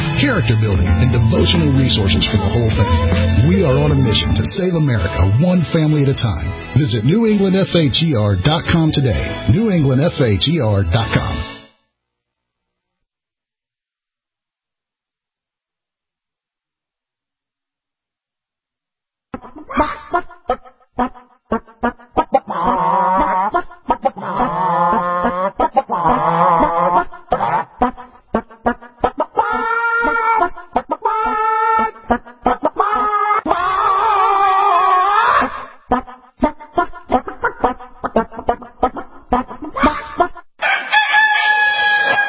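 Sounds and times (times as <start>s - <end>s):
speech: 0.2s - 11.5s
chickens clucking: 19.4s - 34.2s, 35.3s - 40.5s
rooster crowing: 40.6s - 42.2s.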